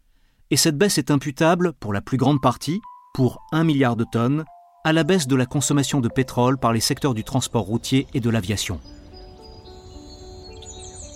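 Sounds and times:
speech: 0.5s - 9.0s
birds chirping and singing: 5.1s - 11.1s.

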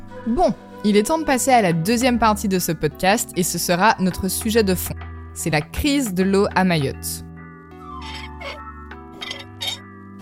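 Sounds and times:
speech: 0.2s - 7.3s
dry faucet tap in Mayotte squeaking while turned during a water crisis: 8.0s - 8.6s, 9.2s - 9.8s.

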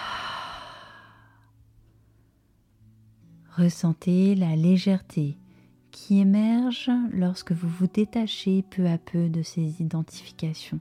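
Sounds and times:
deep slow breath released as a breathy sigh during a guided meditation: 0.0s - 1.5s
speech: 3.6s - 5.4s, 6.0s - 10.8s.

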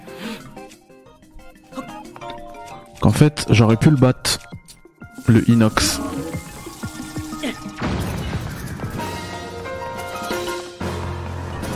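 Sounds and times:
speech: 3.0s - 4.5s, 5.3s - 6.0s
video game bomb explosions: 7.8s - 9.6s.

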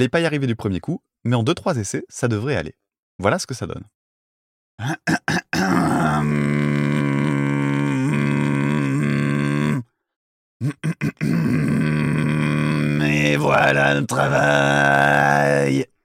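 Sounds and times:
speech: 0.0s - 4.0s, 4.8s - 6.6s, 13.5s - 15.9s
man clearing throat with raspy bursts: 4.8s - 6.0s, 10.6s - 11.7s
man throat singing a guttural drone with overtones: 4.8s - 10.0s, 10.6s - 15.9s.

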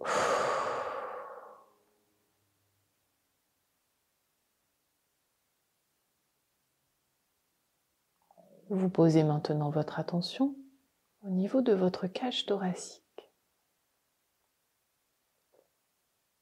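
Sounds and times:
slow breathy exhale during a relaxation breathing exercise: 0.0s - 1.8s
speech: 8.7s - 10.6s, 11.2s - 13.0s.

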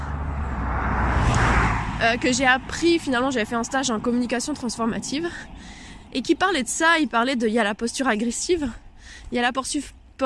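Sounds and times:
car rushing past with road noise: 0.0s - 4.5s
speech: 2.0s - 10.2s.

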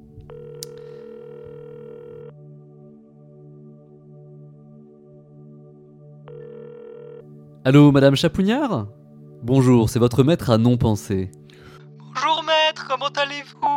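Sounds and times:
telephone ringing tone of an outgoing call: 0.3s - 2.4s, 6.3s - 7.3s
speech: 7.6s - 11.6s, 12.9s - 13.7s.

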